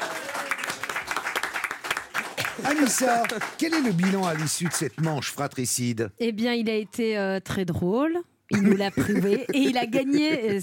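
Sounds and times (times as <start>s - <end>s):
quiz game audience applauding a contestant: 0.0s - 5.5s
speech: 2.6s - 10.6s
laughter: 8.5s - 10.6s.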